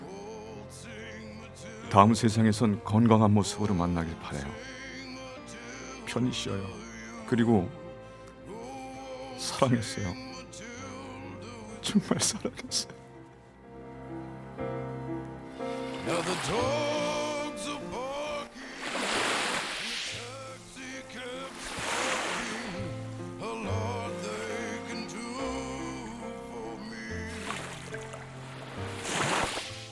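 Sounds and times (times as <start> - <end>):
soft sustained musical backdrop: 0.0 - 29.8
speech: 1.9 - 4.8, 6.1 - 7.8, 9.4 - 10.7, 11.9 - 13.0, 16.3 - 17.0
ocean waves washing ashore: 15.5 - 29.8.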